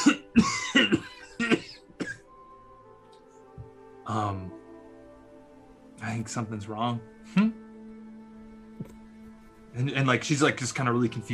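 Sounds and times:
woman coughing: 0.0s - 2.2s
speech: 0.4s - 1.0s, 6.2s - 7.5s, 9.8s - 11.3s.

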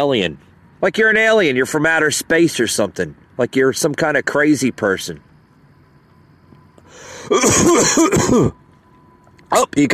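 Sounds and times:
speech: 0.0s - 5.3s, 6.9s - 8.6s, 9.5s - 9.9s
man coughing rough hacking coughs: 7.2s - 8.6s.

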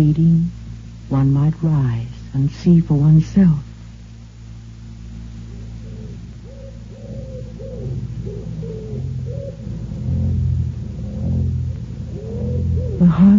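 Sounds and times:
speech: 0.0s - 3.7s, 13.1s - 13.3s
steady low mechanical rumble: 0.0s - 13.3s
wood pigeons cooing: 5.4s - 13.3s.

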